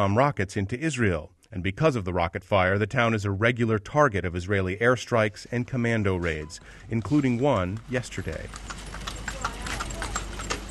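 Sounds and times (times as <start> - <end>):
speech: 0.0 - 8.8
donkey hooves clopping while pulling a wooden cart: 5.2 - 10.7.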